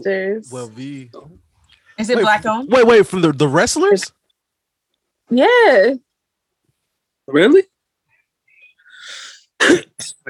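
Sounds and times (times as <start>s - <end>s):
speech: 0.0s - 4.2s, 5.3s - 6.0s, 7.3s - 7.7s, 9.6s - 10.2s
breathy airy cough: 9.6s - 10.2s.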